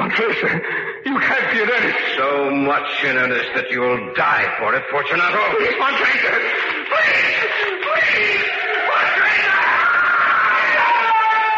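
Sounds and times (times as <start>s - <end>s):
laughter: 0.0s - 2.1s, 5.1s - 11.5s
speech: 0.1s - 8.7s
man screaming in terror: 6.9s - 11.5s.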